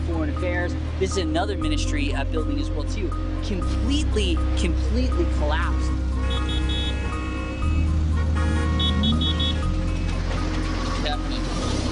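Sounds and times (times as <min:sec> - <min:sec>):
busy street traffic low engine rumble: 0:00.0 - 0:11.9
vehicles passing: 0:00.0 - 0:11.9
speech: 0:00.4 - 0:06.4
short vehicle horn toots and beeps: 0:06.1 - 0:10.4.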